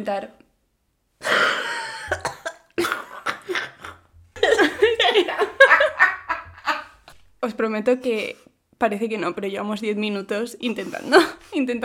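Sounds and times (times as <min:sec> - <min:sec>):
speech: 0:00.0 - 0:00.4, 0:07.4 - 0:11.8
coughing fit: 0:01.2 - 0:05.4
laughter: 0:02.8 - 0:07.0.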